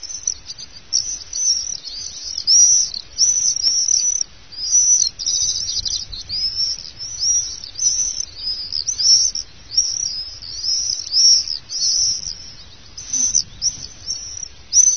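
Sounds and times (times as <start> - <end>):
common swift screaming calls: 0.0 - 14.9.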